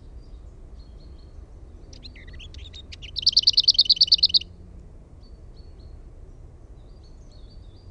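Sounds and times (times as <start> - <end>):
lesser whitethroat singing: 0.8 - 4.5.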